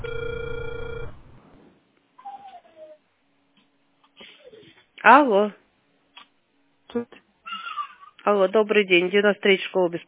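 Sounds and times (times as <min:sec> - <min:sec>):
telephone line ringing tone: 0:00.0 - 0:01.3
speech: 0:05.0 - 0:05.6, 0:06.9 - 0:07.2, 0:08.3 - 0:10.0.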